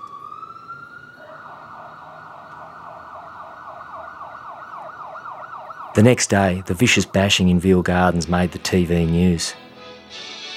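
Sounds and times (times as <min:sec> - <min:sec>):
approaching ambulance siren: 0:00.0 - 0:07.1
low traffic rumble: 0:00.0 - 0:09.6
speech: 0:06.0 - 0:10.3.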